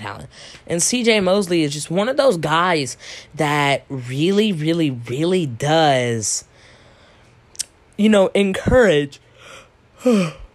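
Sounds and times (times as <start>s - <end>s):
speech: 0.1s - 6.5s, 8.0s - 9.2s, 10.0s - 10.4s
yawn: 9.4s - 10.5s.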